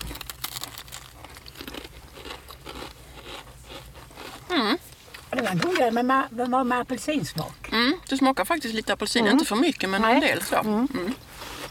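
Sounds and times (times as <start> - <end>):
biting and crunching into heart-shaped gingerbread biscuits: 0.0 - 4.6
speech: 5.4 - 11.4.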